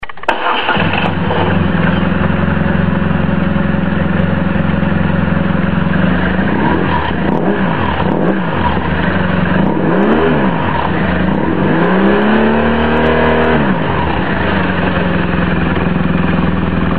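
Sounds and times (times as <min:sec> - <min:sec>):
BMW R1200RT motorcycle: 0:00.0 - 0:16.9.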